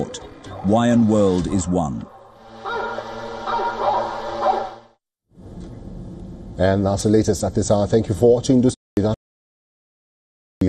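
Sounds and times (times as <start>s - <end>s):
speech: 0.0s - 2.1s, 6.6s - 9.2s
pack of hunting dogs barking and yelping: 2.0s - 4.9s
steady low hum: 2.0s - 6.6s
rough burst of noise: 2.3s - 6.0s.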